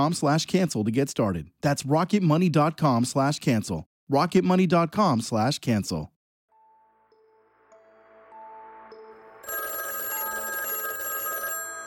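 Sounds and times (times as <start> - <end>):
speech: 0.0 - 6.2
telephone ringing with a bright trilling electronic tone: 9.4 - 11.8.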